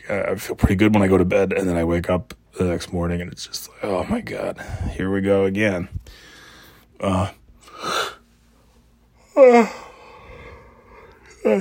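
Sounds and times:
speech: 0:00.1 - 0:06.3, 0:07.0 - 0:07.9, 0:09.4 - 0:09.8
person yawning with groaning exhale: 0:09.2 - 0:11.5.

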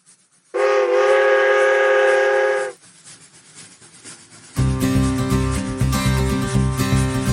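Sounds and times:
loud steam train whistle: 0:00.6 - 0:02.8
upbeat music: 0:04.6 - 0:07.3.

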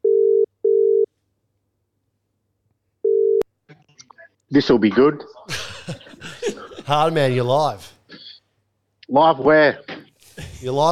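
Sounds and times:
outgoing phone call ringback tone: 0:00.0 - 0:01.1, 0:03.0 - 0:03.4
speech: 0:04.5 - 0:06.0, 0:06.9 - 0:07.9, 0:09.1 - 0:09.9, 0:10.6 - 0:10.9
laughter: 0:05.5 - 0:07.4, 0:10.2 - 0:10.9.

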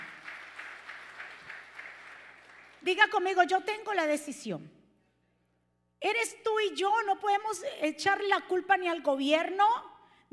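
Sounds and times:
audience applauding loudly: 0:00.0 - 0:02.8
speech: 0:02.9 - 0:04.8, 0:06.0 - 0:10.3.

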